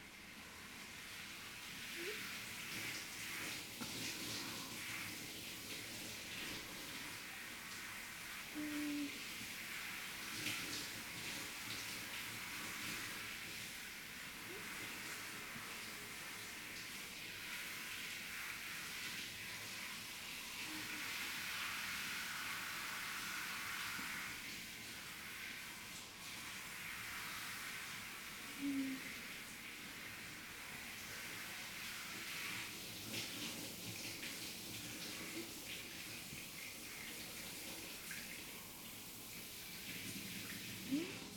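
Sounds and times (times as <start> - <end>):
running water rinsing off foam: 0.6 - 41.3.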